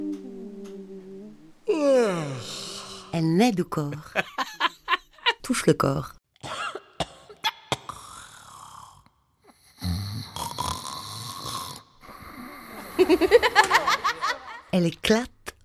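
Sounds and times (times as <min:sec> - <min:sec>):
person groaning and moaning: 0:00.0 - 0:03.2
person snoring: 0:00.0 - 0:03.2, 0:07.8 - 0:13.6
speech: 0:03.2 - 0:04.3, 0:05.5 - 0:06.2, 0:14.8 - 0:15.4
laughter: 0:12.8 - 0:14.7.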